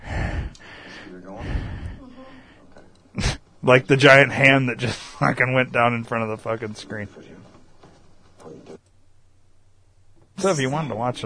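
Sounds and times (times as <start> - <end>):
heavy breathing: 0.0 - 3.6, 4.8 - 5.2
speech: 3.6 - 7.4, 10.4 - 11.2.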